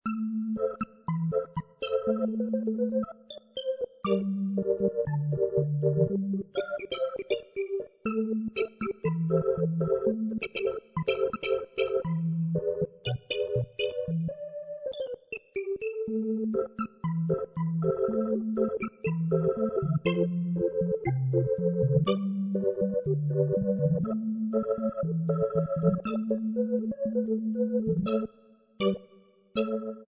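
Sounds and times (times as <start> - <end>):
organ playing bossa nova: 0.1 - 15.1, 15.7 - 29.0.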